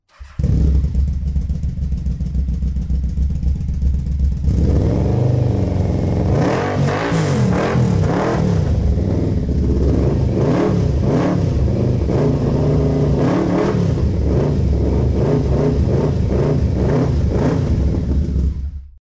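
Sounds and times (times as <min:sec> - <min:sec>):
Yamaha motorcycle engine revving: 0:00.1 - 0:18.9.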